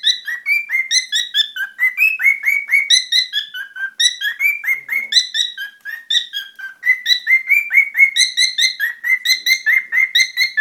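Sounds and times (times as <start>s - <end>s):
cockatiel giving harsh rapid chirps: 0.0s - 10.5s.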